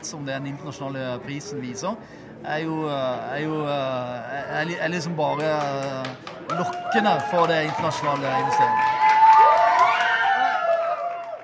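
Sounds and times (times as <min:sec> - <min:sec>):
speech: 0:00.0 - 0:09.0
large audience cheering and applauding: 0:06.0 - 0:11.4
excited shouts and whoops: 0:06.5 - 0:11.4.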